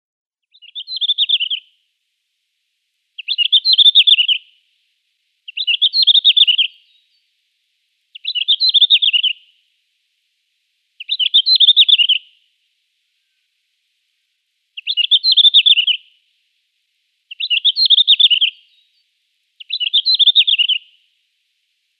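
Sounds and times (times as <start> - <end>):
Red-flanked Bluetail song: 0.5 - 1.8, 3.2 - 4.6, 5.5 - 7.2, 8.1 - 9.6, 11.0 - 12.4, 14.8 - 16.2, 17.3 - 19.0, 19.6 - 21.1.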